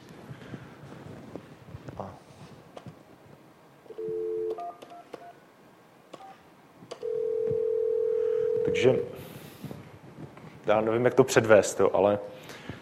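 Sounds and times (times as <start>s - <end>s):
quiet noise: 0.0s - 12.8s
desk phone keypad beeping tones: 4.0s - 5.4s
speech: 8.7s - 9.3s, 10.7s - 12.5s.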